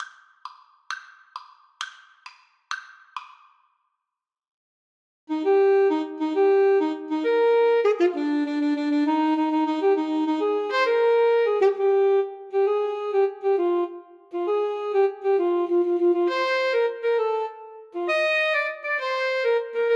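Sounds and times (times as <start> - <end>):
alto saxophone duet: 5.3 - 19.9.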